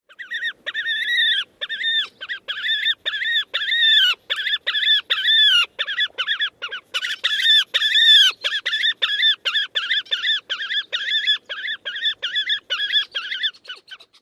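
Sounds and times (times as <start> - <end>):
bird alarm calls near nest: 0.1 - 14.2.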